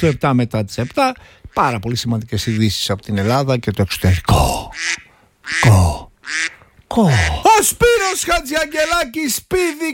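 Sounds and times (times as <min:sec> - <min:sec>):
duck quacking in a radio news jingle: 0:00.0 - 0:03.4, 0:04.0 - 0:07.5
speech: 0:00.0 - 0:09.9.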